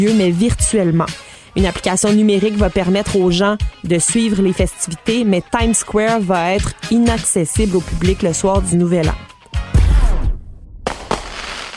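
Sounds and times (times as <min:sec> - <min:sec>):
speech: 0:00.0 - 0:09.3
fireworks exploding with booming bursts and crackling bangs: 0:09.8 - 0:11.7.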